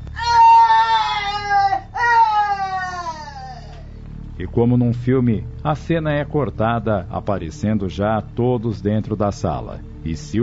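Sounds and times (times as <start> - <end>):
anguished cry of pain: 0.1 - 3.9
speech: 4.4 - 10.4.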